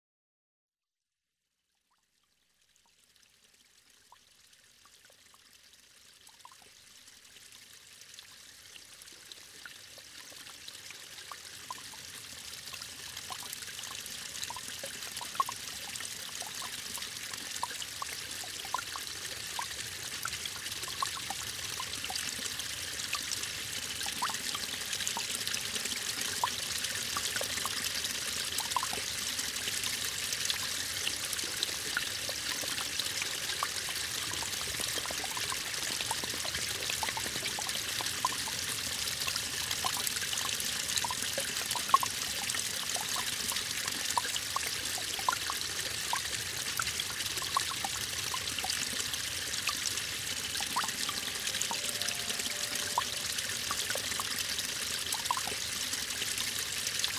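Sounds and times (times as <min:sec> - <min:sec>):
mountain stream flowing: 0:13.0 - 0:57.1
music: 0:51.0 - 0:53.8.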